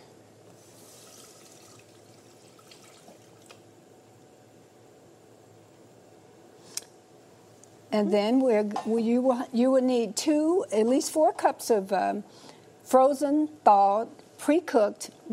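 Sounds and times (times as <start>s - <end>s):
water running from a tap into a sink: 0.6s - 3.6s
speech: 7.9s - 15.3s.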